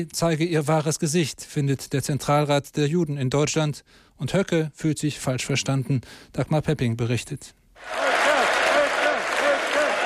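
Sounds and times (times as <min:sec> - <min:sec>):
speech: 0:00.0 - 0:08.0
dense clapping in a hall at a political party youth-organization event in Dresden: 0:07.8 - 0:10.0.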